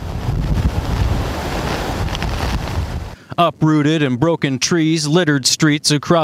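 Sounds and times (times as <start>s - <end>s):
strong storm wind gusts buffeting the microphone: 0.0s - 3.2s
speech: 3.4s - 6.2s.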